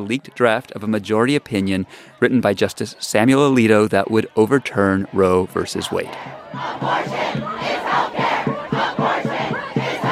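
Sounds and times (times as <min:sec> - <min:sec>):
speech: 0:00.0 - 0:08.2
protesters shouting and chanting outside a courthouse: 0:00.0 - 0:10.1
steady roar of gathered protesters: 0:03.6 - 0:10.1.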